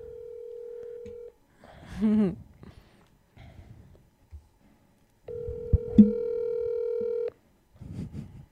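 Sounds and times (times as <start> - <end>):
outgoing phone call ringback tones on speakerphone: 0.0 - 1.3, 5.3 - 7.3.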